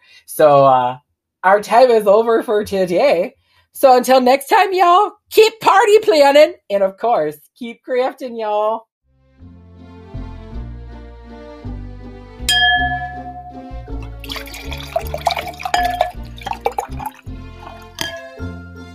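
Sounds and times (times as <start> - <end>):
speech: 0.3 - 8.9
music with a plodding bass line: 9.1 - 18.9
bright glassy clink: 12.5 - 18.6
sherry being poured into a glass: 12.7 - 18.4.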